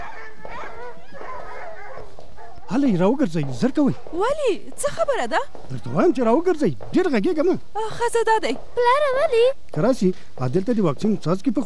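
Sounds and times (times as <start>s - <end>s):
dog yelping and whimpering at people passing by: 0.0s - 2.6s
speech: 2.7s - 11.6s.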